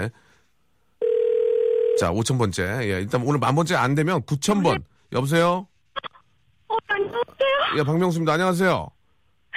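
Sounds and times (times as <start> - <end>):
speech: 0.0 - 0.3, 2.0 - 5.7, 6.8 - 9.0
loud steady telephone tone of a call being placed: 1.0 - 2.0.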